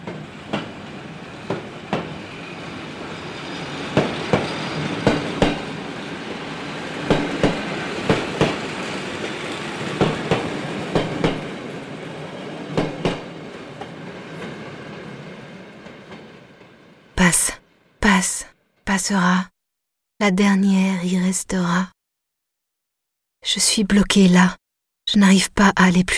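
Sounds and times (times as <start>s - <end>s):
train wheels clacking over rail joints: 0.0s - 17.0s
train rumbling by: 0.0s - 18.4s
speech: 19.0s - 19.5s, 20.2s - 22.0s, 23.4s - 26.1s.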